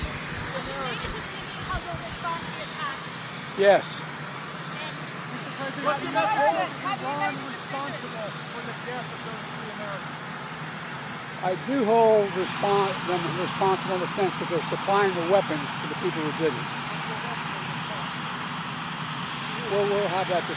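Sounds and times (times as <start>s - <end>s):
helicopter engine running on the White House grounds: 0.0s - 20.5s
speech: 3.6s - 4.0s, 5.7s - 10.2s, 11.4s - 17.2s, 19.7s - 20.5s.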